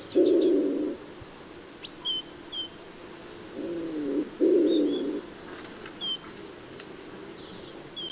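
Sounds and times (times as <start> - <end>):
common wood pigeon repeating low muffled coos: 0.0 - 1.0, 3.5 - 6.5
small birds twittering with high notes: 0.0 - 1.0, 1.8 - 8.1.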